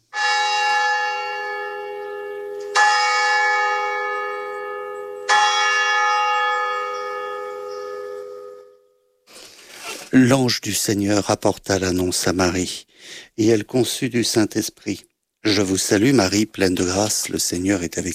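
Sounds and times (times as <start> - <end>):
church bell ringing: 0.0 - 9.0
speech: 10.2 - 18.1.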